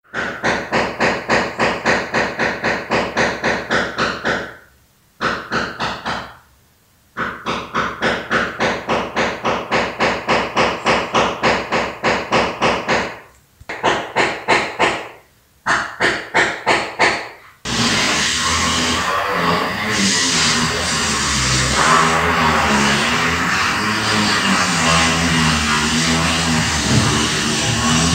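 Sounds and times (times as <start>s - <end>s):
hammering at neighbours' construction work: 0.1s - 4.6s, 5.2s - 6.4s, 7.2s - 17.3s, 21.1s - 28.1s
power drill drilling at neighbours' construction work: 17.7s - 28.1s.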